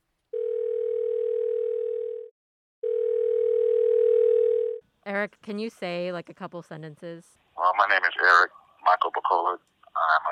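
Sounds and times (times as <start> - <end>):
telephone ringback tone of an outgoing call: 0.3 - 4.8
speech: 5.0 - 10.3.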